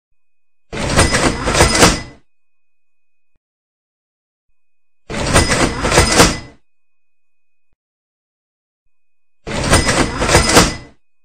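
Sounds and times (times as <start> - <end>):
supermarket machine: 0.7 - 2.3, 5.0 - 6.7, 9.4 - 11.2.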